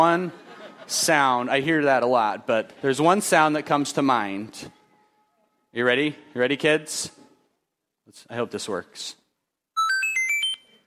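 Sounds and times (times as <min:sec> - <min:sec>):
laughter: 0:00.0 - 0:01.5
speech: 0:00.0 - 0:04.8, 0:05.7 - 0:07.2, 0:08.1 - 0:09.2
video game extra-life one-up jingle of electronic notes: 0:09.8 - 0:10.7.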